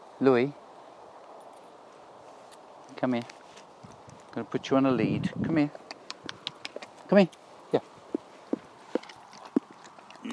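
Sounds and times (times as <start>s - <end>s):
speech: 0.2s - 0.6s, 3.0s - 3.4s, 4.4s - 5.8s, 7.1s - 7.9s
soft rustle: 0.3s - 10.3s
hollow hoof clops from walking horses: 5.7s - 10.3s.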